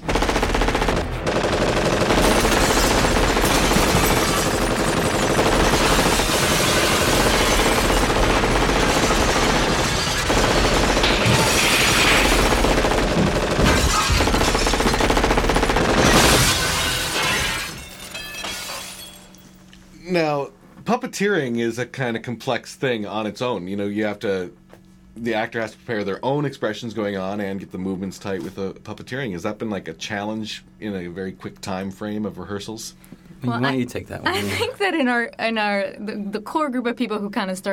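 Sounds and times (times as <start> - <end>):
rapid gunfire fired at glass: 0.0 - 16.9
glass crashing and shattering: 2.3 - 8.1, 9.0 - 12.5, 13.6 - 15.0, 16.0 - 19.6
speech: 21.1 - 24.6, 25.2 - 37.7.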